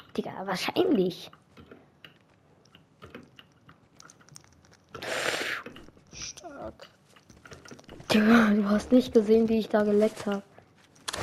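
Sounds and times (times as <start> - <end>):
speech: 0.2 - 1.4, 6.2 - 7.0, 8.1 - 10.5
chewing while eating pizza: 2.0 - 8.2.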